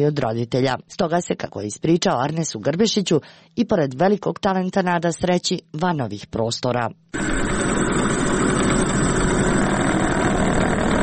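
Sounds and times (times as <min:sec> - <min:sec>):
speech: 0:00.0 - 0:07.6
decades-old metal lathe running with mechanical hum and rattling drone: 0:07.2 - 0:11.0.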